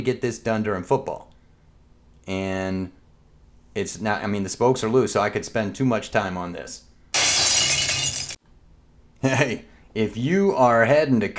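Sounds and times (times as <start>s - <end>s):
speech: 0.0s - 1.3s, 2.3s - 3.0s, 3.8s - 6.9s, 9.2s - 11.3s
glass beer bottle shattering: 7.2s - 8.4s.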